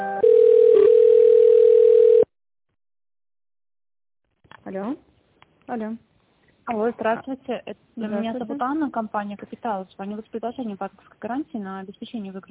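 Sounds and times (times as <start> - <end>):
telephone line tones while a call is being transferred: 0.2 - 2.3
speech: 7.0 - 12.5.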